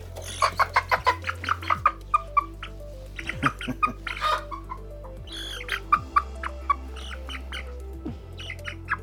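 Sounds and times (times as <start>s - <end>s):
chickens clucking and squawking: 0.0s - 7.8s, 8.4s - 9.0s.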